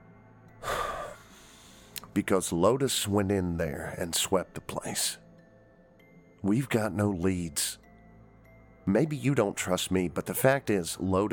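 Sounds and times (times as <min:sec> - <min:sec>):
person drawing a deep breath: 0:00.6 - 0:02.0
speech: 0:02.2 - 0:05.2, 0:06.4 - 0:07.8, 0:08.8 - 0:11.3.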